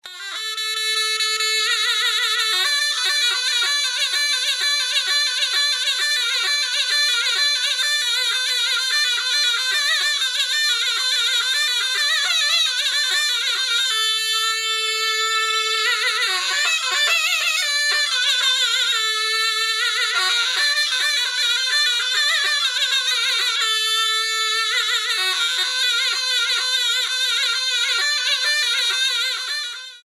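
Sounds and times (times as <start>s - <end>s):
zurna: 0.0s - 30.0s.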